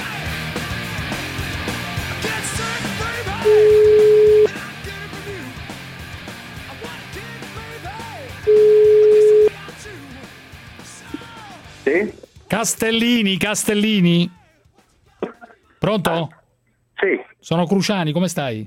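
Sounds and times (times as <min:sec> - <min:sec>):
ringback tone of an outgoing telephone call: 0:03.4 - 0:04.5, 0:08.5 - 0:09.5
speech: 0:12.6 - 0:14.4, 0:15.8 - 0:16.4, 0:17.0 - 0:18.6.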